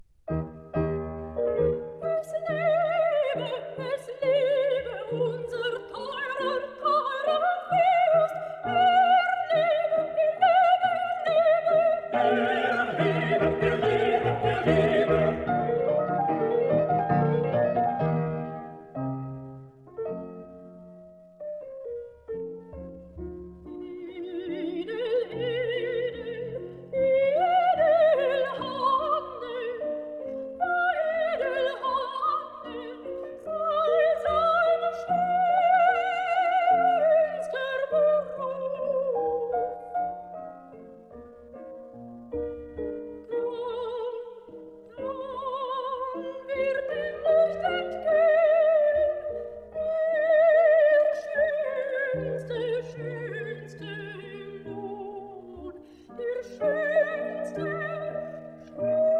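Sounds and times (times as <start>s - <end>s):
piano accompaniment: 0.0s - 59.1s
soprano singing a cantata: 0.8s - 20.6s, 22.1s - 59.1s
choir singing: 11.7s - 16.2s.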